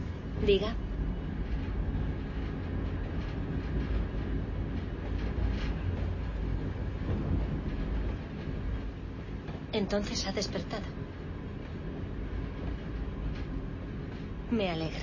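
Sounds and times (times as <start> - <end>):
faint rhythmic clatter of train on tracks: 0.0 - 15.0
train rolling along the tracks heard from inside a carriage: 0.0 - 15.0
speech: 0.4 - 0.8, 9.8 - 11.0, 14.5 - 15.0.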